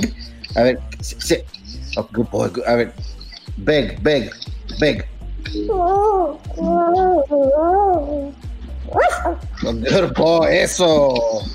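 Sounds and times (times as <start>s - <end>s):
speech: 0.0s - 11.5s
dog whining barks and yips while being trained: 8.9s - 9.5s.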